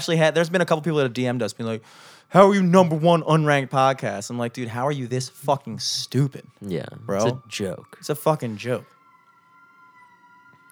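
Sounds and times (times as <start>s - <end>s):
speech: 0.0s - 9.0s
faint emergency vehicle siren: 7.2s - 10.7s.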